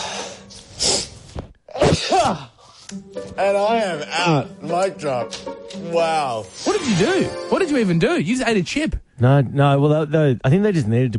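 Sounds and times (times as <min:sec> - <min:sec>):
inhale: 0:00.0 - 0:01.3
person sneezing: 0:00.8 - 0:02.8
speech: 0:01.9 - 0:11.1.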